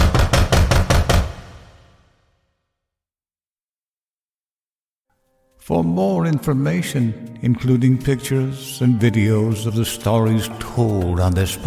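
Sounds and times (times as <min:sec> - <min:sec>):
loud rapid knocking by a woman's hand on a front door: 0:00.0 - 0:01.8
speech: 0:05.6 - 0:11.6.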